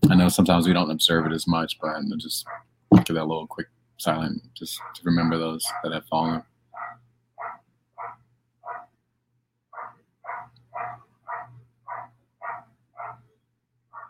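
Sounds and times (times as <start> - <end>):
speech: 0.3 - 6.5
dog barking in New York: 2.4 - 2.6, 4.8 - 5.0, 6.8 - 8.9, 9.8 - 13.2.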